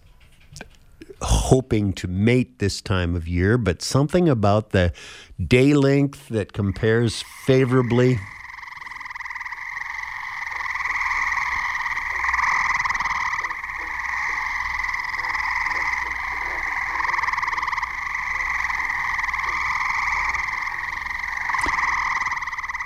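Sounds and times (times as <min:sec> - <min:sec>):
speech: 0:01.5 - 0:08.4
chorus of gray tree frogs trilling: 0:05.9 - 0:22.8.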